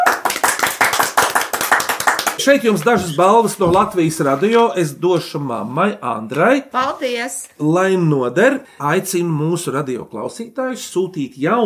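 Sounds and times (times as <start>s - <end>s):
applause from a small group: 0.0s - 3.1s
speech: 2.4s - 11.6s.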